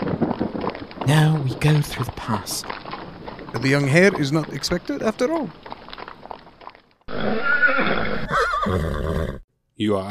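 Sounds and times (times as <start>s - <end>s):
hoof clatter of calèche horses: 0.0s - 9.1s
speech: 1.0s - 2.8s, 3.5s - 5.7s, 9.8s - 10.0s
horse neighing from a four-horse calèche at the Borgo Pass: 7.1s - 9.5s.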